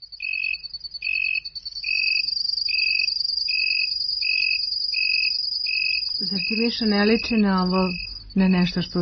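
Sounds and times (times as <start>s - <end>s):
continuous thin shrill insect trill: 0.0s - 8.9s
cricket chirping: 0.0s - 8.9s
speech: 6.3s - 8.9s.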